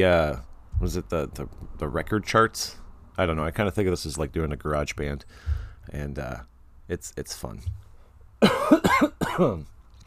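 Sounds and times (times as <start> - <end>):
speech: 0.0 - 7.8, 8.4 - 9.7
person coughing: 8.4 - 9.6.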